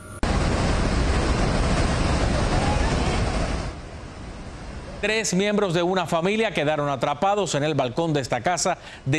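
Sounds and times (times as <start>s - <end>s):
rushing floodwater torrent: 0.2s - 6.4s
speech: 5.0s - 9.1s.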